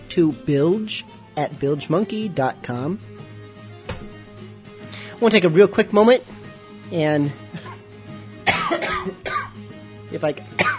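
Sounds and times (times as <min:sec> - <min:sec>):
speech: 0:00.2 - 0:03.3, 0:05.2 - 0:07.5, 0:10.1 - 0:10.6
person coughing: 0:07.5 - 0:07.8, 0:08.4 - 0:09.6, 0:10.6 - 0:10.7.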